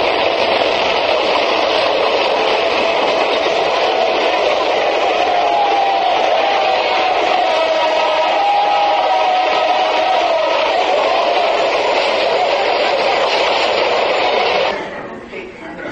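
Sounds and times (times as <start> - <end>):
train running with loud rumble and rattle: 0.0 - 15.0
crowd murmur: 2.4 - 15.9.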